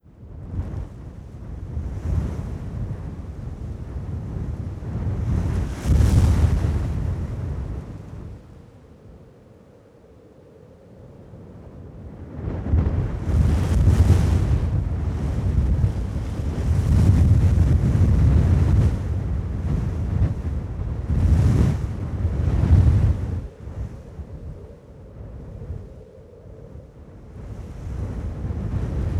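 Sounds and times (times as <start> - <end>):
heavy wind blowing sand: 0.0 - 29.1.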